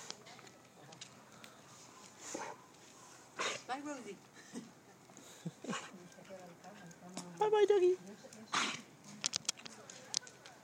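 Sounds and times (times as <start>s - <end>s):
dog coughing from kennel cough: 3.4s - 3.7s, 5.6s - 6.0s, 8.5s - 8.9s
speech: 3.8s - 4.7s, 7.4s - 8.1s.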